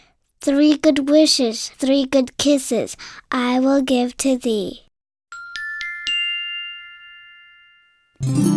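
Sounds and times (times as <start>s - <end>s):
speech: 0.4s - 4.8s, 8.2s - 8.5s
small bell ringing: 5.3s - 8.5s.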